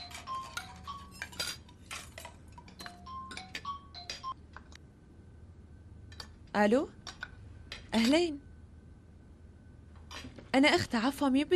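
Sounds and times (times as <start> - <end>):
mobile phone ringtone chirping: 0.0 - 1.2, 2.9 - 4.4
dishes and cutlery clattering: 0.0 - 4.3
speech: 6.6 - 7.0, 7.9 - 8.5, 10.6 - 11.5.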